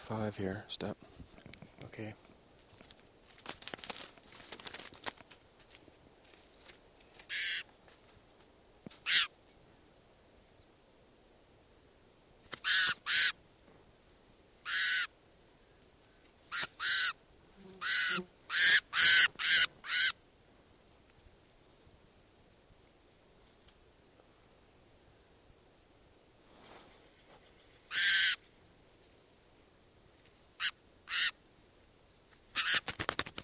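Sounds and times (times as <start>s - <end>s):
speech: 0.1s - 2.3s
crinkling handling noise: 1.3s - 8.5s
harsh raspy calls of a bird being handled: 7.3s - 7.7s, 9.0s - 9.3s, 12.6s - 13.4s, 14.6s - 15.1s, 16.5s - 17.2s, 17.8s - 20.2s, 27.0s - 28.6s, 30.6s - 31.4s, 32.5s - 32.9s.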